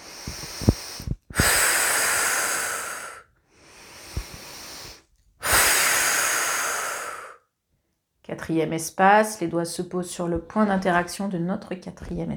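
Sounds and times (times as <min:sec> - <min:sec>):
slow breathing out during a guided relaxation exercise: 0:00.0 - 0:07.4
speech: 0:08.4 - 0:12.3.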